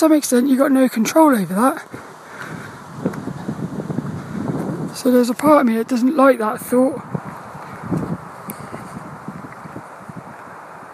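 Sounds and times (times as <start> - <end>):
speech: 0.0 - 2.5, 5.0 - 7.3
gusty wind buffeting the microphone outdoors: 0.0 - 10.9.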